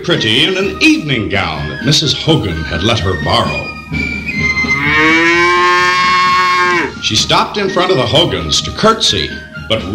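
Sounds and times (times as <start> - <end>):
speech: 0.0 - 4.1, 7.0 - 9.9
cow mooing: 4.7 - 7.0.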